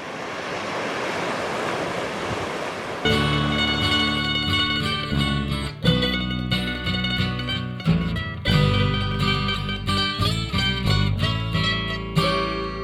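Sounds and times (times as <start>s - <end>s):
ocean waves breaking on shore: 0.0s - 6.2s
music with sustained tones: 3.1s - 12.8s.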